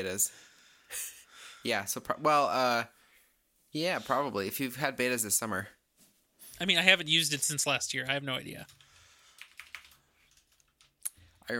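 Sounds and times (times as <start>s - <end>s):
speech: 0.0s - 3.0s, 3.7s - 5.8s, 6.6s - 8.8s
keyboard typing a message: 8.5s - 11.0s.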